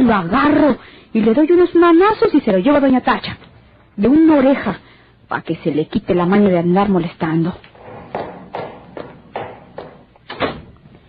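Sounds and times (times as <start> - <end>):
speech: 0.1 - 7.7
chair being pulled closer: 7.6 - 10.1.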